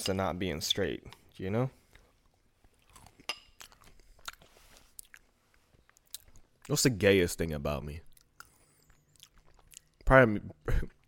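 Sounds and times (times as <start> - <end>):
speech: 0.0 - 1.8, 6.7 - 8.1, 10.1 - 11.0
eating Greek yogurt with strawberries and cereal, wet chewing: 1.9 - 6.8, 8.1 - 10.1.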